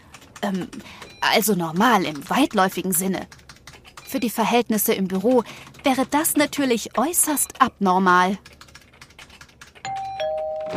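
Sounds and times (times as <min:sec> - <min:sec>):
speech: 0:00.4 - 0:03.4, 0:04.1 - 0:08.5
office doorbell two-note chime: 0:09.9 - 0:10.7.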